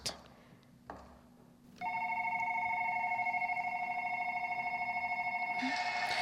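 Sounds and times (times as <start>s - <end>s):
telephone ring played on an electronic keyboard: 1.8s - 6.1s.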